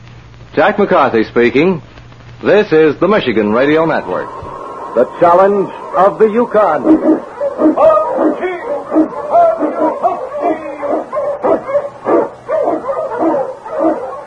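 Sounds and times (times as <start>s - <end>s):
speech: 0.6s - 4.4s, 5.0s - 9.2s
Eskimo sled dogs barking and yelping: 4.0s - 14.2s.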